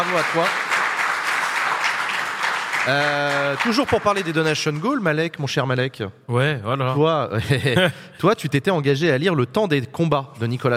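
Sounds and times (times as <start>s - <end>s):
speech: 0.0s - 0.6s, 2.8s - 10.7s
audience applause: 0.0s - 5.0s
laughter: 7.4s - 8.1s.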